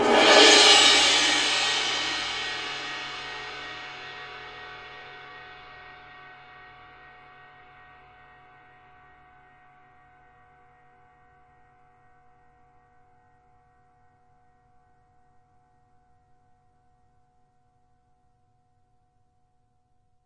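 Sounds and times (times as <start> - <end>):
long dramatic drum crash: 0.0 - 3.6.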